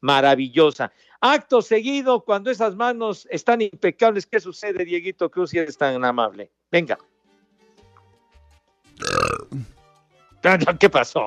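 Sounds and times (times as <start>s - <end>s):
speech: 0.0s - 7.1s, 9.0s - 9.8s, 10.4s - 11.2s
loud drawn-out gurgling burp: 9.0s - 9.8s
short low trailing gulp: 9.0s - 9.8s.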